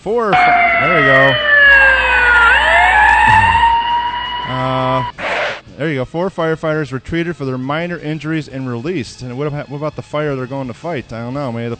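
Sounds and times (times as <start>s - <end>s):
speech: 0.0s - 1.5s, 5.8s - 11.7s
fire engine siren yelping and wailing: 0.3s - 5.2s.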